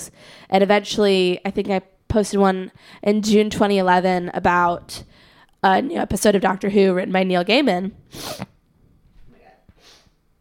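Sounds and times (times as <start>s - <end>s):
speech: 0.5s - 8.5s
person sniffing: 8.1s - 8.5s, 9.7s - 10.2s.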